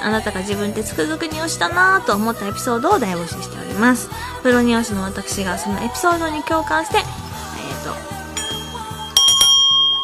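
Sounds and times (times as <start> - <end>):
speech: 0.0 - 7.2
soft repeating musical backing: 0.0 - 10.0
bell ringing: 8.3 - 10.0.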